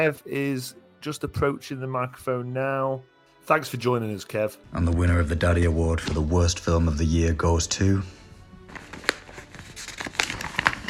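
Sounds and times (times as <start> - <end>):
speech: 0.0 - 8.2
paper envelope being opened: 4.8 - 6.6, 8.7 - 10.8
soft paper rustling: 5.9 - 6.5, 8.7 - 10.8
sharp crinkles and tearing crackles of a paper envelope: 6.0 - 6.3, 8.7 - 10.8.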